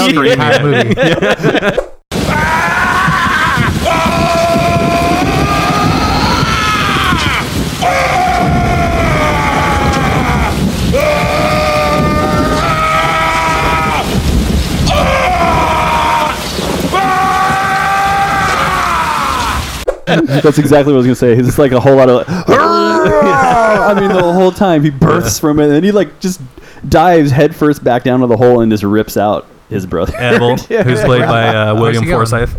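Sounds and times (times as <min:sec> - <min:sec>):
man yelling loudly in movie clip: 0:00.0 - 0:01.0, 0:02.3 - 0:14.2, 0:14.9 - 0:16.4, 0:22.5 - 0:25.3, 0:30.1 - 0:32.3
laughter: 0:00.0 - 0:01.9, 0:20.1 - 0:21.0, 0:22.3 - 0:25.3, 0:30.1 - 0:32.2
speech: 0:00.1 - 0:02.0, 0:20.4 - 0:32.5
noisy rumbling background: 0:02.2 - 0:32.5.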